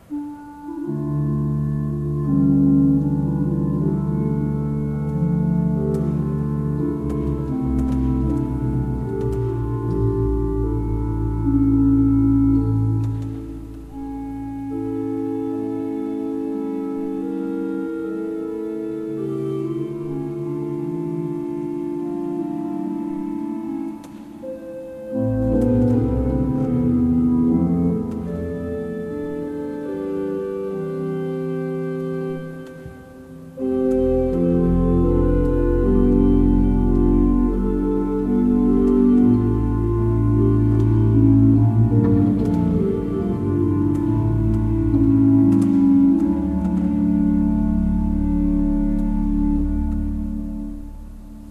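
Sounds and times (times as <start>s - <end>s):
Dutch organ playing: 0.0s - 51.4s.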